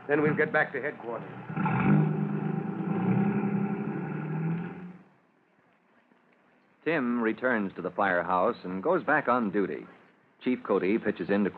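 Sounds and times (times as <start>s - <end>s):
car engine starting and driving off: 0.0s - 5.1s
speech: 0.1s - 1.8s, 6.9s - 11.5s.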